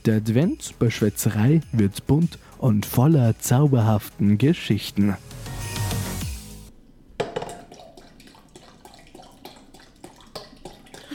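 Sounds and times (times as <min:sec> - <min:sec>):
speech: 0:00.0 - 0:05.4
small drips and clinks: 0:07.3 - 0:11.1
apple juice poured into a measuring cup: 0:07.4 - 0:11.1.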